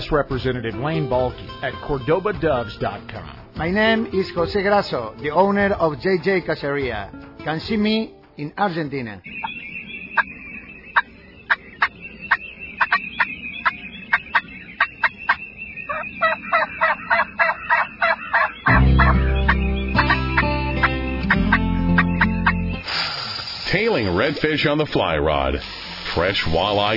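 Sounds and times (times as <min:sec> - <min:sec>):
speech: 0:00.1 - 0:09.5, 0:24.3 - 0:26.9
wild turkey gobbling: 0:09.3 - 0:22.6.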